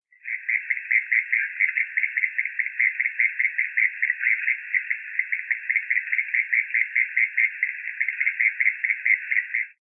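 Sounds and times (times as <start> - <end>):
unknown amphibian calling: 0.2 - 9.8.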